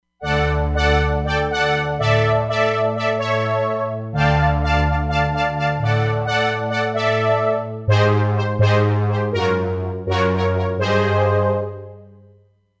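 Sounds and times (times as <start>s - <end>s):
saw brass synth on a Roland Fantom XR: 0.2s - 12.4s.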